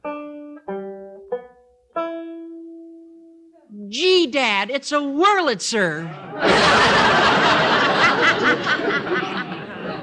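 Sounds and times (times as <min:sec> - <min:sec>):
banjo plucked tuning notes: 0:00.0 - 0:06.1
speech: 0:03.9 - 0:07.8
laughter: 0:06.1 - 0:10.0.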